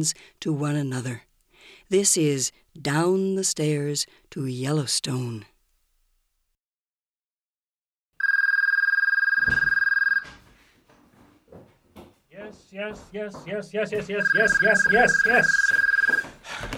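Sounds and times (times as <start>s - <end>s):
speech: 0.0s - 5.5s, 12.7s - 15.9s
cordless phone ringing with an electronic trill: 8.2s - 10.4s, 13.9s - 16.4s.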